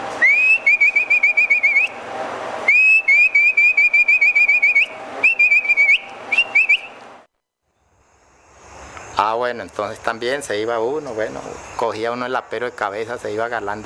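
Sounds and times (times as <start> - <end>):
herder's whistle for driving horses toward the corral: 0.2 - 2.0, 2.7 - 7.1
speech: 9.4 - 13.8.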